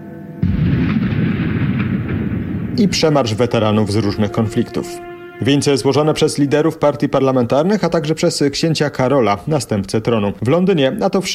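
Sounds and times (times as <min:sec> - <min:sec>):
ceremonial cannon salute boom at a remembrance ceremony in London: 0:00.4 - 0:05.3
sustained heavy low rumble of a ceremonial cannon salute: 0:00.4 - 0:06.9
speech: 0:02.8 - 0:11.3.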